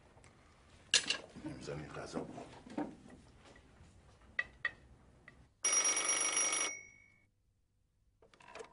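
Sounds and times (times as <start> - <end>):
speech: 1.6 - 2.8
telephone ringing during an outgoing call: 5.6 - 7.3.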